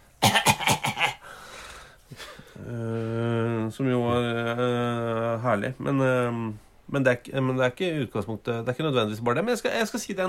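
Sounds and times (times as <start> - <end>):
person imitating a man coughing open-mouthed over a table of food: 0.2 - 1.2
speech: 2.1 - 3.0, 3.8 - 4.8, 5.4 - 10.2.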